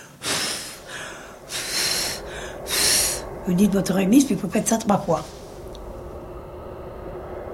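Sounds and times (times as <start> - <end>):
person blowing out breath on their hand in a folk healing ritual: 0.0 - 3.2
speech: 3.4 - 5.4.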